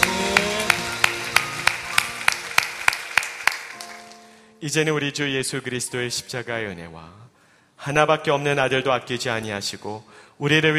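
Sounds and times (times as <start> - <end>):
audience clapping in a steady even rhythm: 0.0 - 4.4
sustained tonal musical backdrop: 0.0 - 4.4
speech: 4.6 - 7.2, 7.8 - 10.7.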